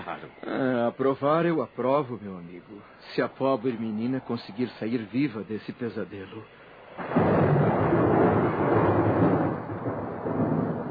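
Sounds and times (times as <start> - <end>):
speech: 0.2 - 7.5
deep thunder rumbling: 7.0 - 10.9
heavy rain pouring: 7.0 - 10.9.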